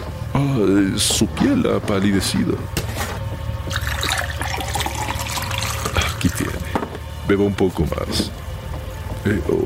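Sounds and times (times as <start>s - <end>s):
speech: 0.3s - 3.0s, 7.3s - 8.4s, 9.2s - 9.6s
water pouring into a glass: 3.7s - 6.7s.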